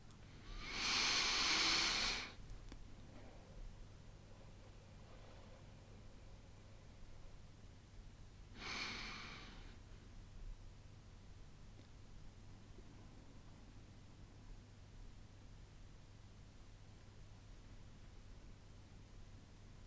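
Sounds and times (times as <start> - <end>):
deep breaths in through the nose and out through the mouth: 0.2 - 7.4, 8.5 - 10.1.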